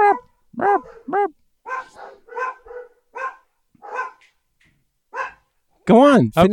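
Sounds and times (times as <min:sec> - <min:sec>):
dogs barking with sharp yaps: 0:00.0 - 0:04.4, 0:05.1 - 0:05.5
speech: 0:05.9 - 0:06.5.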